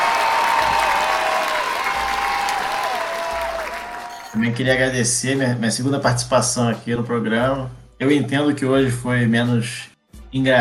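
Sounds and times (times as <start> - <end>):
applause from a group: 0.0 - 4.4
speech: 4.4 - 10.5.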